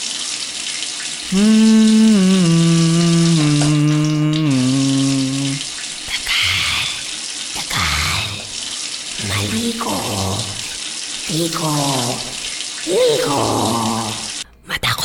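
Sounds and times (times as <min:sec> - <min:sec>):
shower water running: 0:00.0 - 0:14.5
speech: 0:01.3 - 0:02.0
person humming or murmuring: 0:01.3 - 0:05.7, 0:09.2 - 0:10.7, 0:11.4 - 0:14.4.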